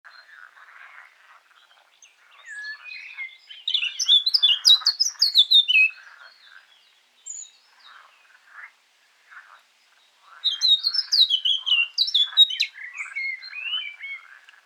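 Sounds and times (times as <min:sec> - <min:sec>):
Eurasian blackcap Sylvia atricapilla warbling phrases of fluting and scratchy notes: 0:02.4 - 0:06.0, 0:10.5 - 0:14.2.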